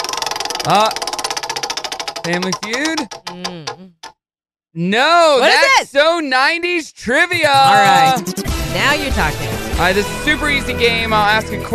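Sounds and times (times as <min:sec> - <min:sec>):
prize wheel spinning during a morning-show game segment: 0:00.0 - 0:04.1
speech: 0:00.6 - 0:01.0, 0:02.2 - 0:03.9, 0:04.7 - 0:11.7.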